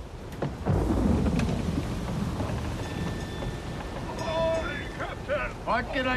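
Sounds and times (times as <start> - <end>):
heavy thunder rumbling at sea: 0.0 - 5.7
steady pouring rain at sea: 0.0 - 6.1
faint high creak: 2.6 - 4.6
speech: 5.8 - 6.1.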